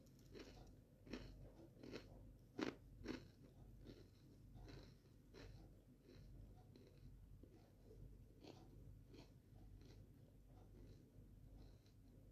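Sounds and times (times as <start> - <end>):
eating crunchy sandwiches: 0.0 - 12.0.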